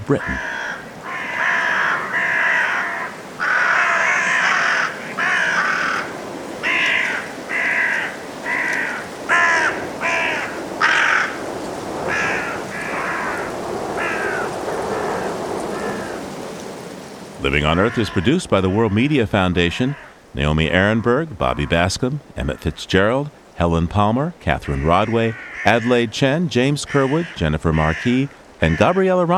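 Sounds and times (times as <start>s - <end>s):
steady hissing background: 0.0s - 29.3s
speech: 0.1s - 0.5s, 17.5s - 29.3s
carrion crows cawing heading to roost at dusk in a park: 0.1s - 16.6s, 17.6s - 18.4s, 19.8s - 20.2s, 24.6s - 26.0s, 26.9s - 29.1s.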